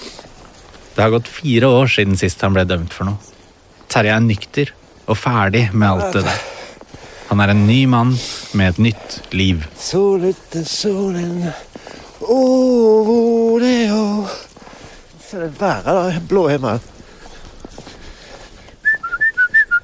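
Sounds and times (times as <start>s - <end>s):
speech: 1.0s - 3.3s, 3.9s - 6.5s, 7.3s - 14.4s, 15.3s - 16.9s
man whistling a bouncy tune: 18.8s - 19.8s.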